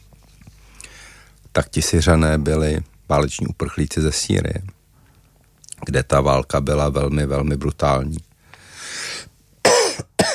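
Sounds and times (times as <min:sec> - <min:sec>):
speech: 0:01.6 - 0:04.8, 0:05.8 - 0:08.3
person coughing: 0:09.6 - 0:10.3.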